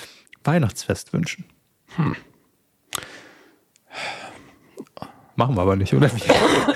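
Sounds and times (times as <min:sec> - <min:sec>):
speech: 0:00.4 - 0:02.3, 0:05.4 - 0:06.7
longer breathy exhale: 0:03.0 - 0:05.3
several short sharp coughs: 0:06.2 - 0:06.7.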